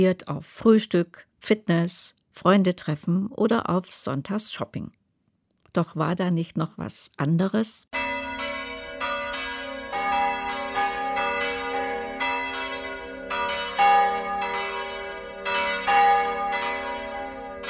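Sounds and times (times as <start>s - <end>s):
speech: 0.0s - 5.0s, 5.8s - 8.0s
several church bells pealing on a Sunday morning: 8.0s - 17.6s.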